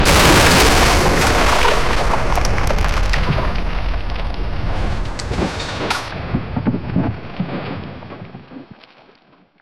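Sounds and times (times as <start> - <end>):
massive tsunami wave: 0.0 - 8.2.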